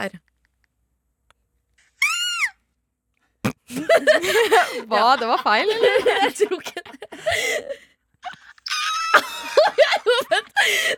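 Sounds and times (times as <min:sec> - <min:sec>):
speech: 0:00.0 - 0:00.3, 0:03.7 - 0:07.9, 0:09.2 - 0:10.9
laughter: 0:03.7 - 0:07.8, 0:08.7 - 0:10.9
recorded person screaming played by mistake: 0:08.6 - 0:09.2.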